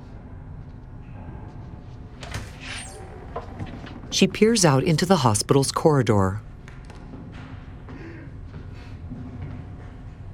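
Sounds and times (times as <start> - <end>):
hospital room door squeaky sliding sweep: 2.3 - 4.0
speech: 4.2 - 6.5.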